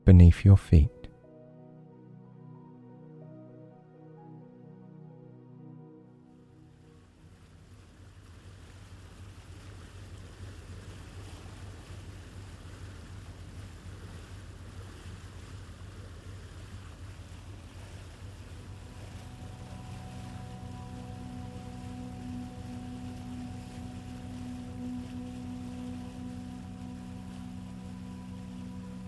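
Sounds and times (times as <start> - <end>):
speech: 0.1 - 1.0
faint tonal hum: 0.8 - 29.0
water noise on a lake: 6.3 - 29.0
wind: 6.3 - 29.0
ferry engine rumbling on a lake: 7.3 - 29.0.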